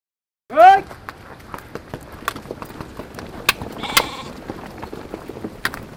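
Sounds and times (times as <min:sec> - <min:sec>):
hoof clicks of goats, sheep and dzos: 0:01.4 - 0:05.9
goats, sheep and dzos bleating: 0:03.8 - 0:04.4.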